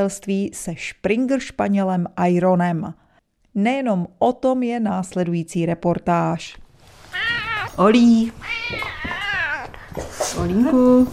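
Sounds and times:
speech: 0.0s - 3.0s, 3.6s - 6.6s, 7.2s - 9.0s, 10.0s - 11.1s
five-year-old tomcat meowing in greeting as the door is opened: 7.1s - 9.9s.

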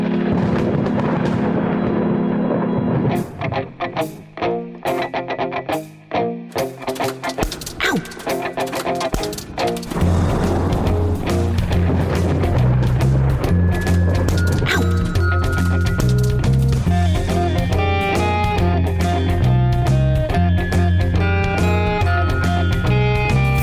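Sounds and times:
thunder booms and rumbles in music: 0.0s - 3.8s, 9.8s - 15.4s
music with familiar instruments and sustained tones: 3.0s - 23.6s
sharp rapid clattering of hailstones: 6.9s - 17.0s.

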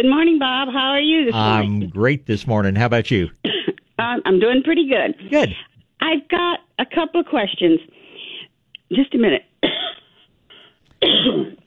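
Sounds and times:
speech: 0.0s - 8.0s, 8.9s - 9.5s, 11.0s - 11.6s
caller coughing on the phone: 5.3s - 5.6s, 11.0s - 11.6s.

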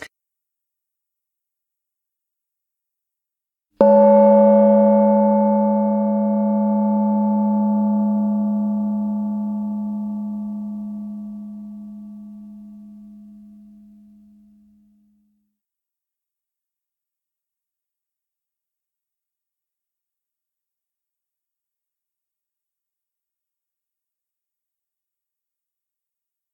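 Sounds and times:
meditation gong struck and ringing out: 3.8s - 14.9s.

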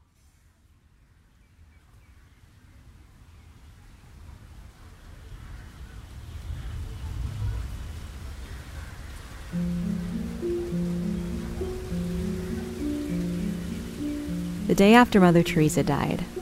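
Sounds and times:
steady rain hissing: 3.6s - 16.4s
gentle sustained musical tones: 9.6s - 16.4s
speech: 14.7s - 16.4s.

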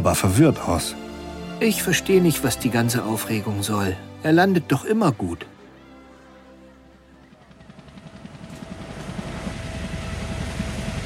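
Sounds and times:
speech: 0.0s - 5.5s
helicopter flying over the sea after a splashdown crew pickup: 6.5s - 11.0s.

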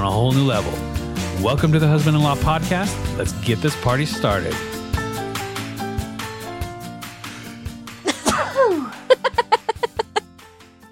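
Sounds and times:
steady music bed: 0.0s - 10.9s
speech: 0.3s - 4.8s
man sneezing: 8.1s - 9.0s
chuckling: 8.1s - 10.9s.

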